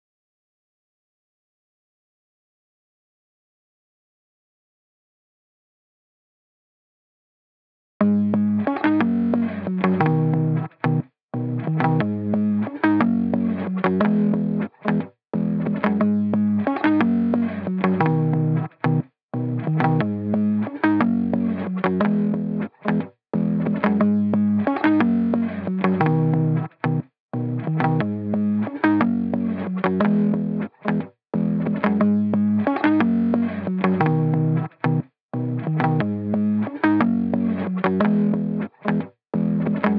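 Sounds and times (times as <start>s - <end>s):
stutter guitar loop in G sharp minor: 8.0s - 39.9s.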